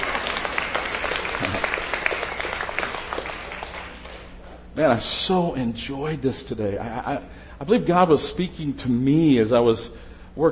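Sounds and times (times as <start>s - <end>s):
crowd applause: 0.0s - 4.4s
speech: 4.8s - 10.5s.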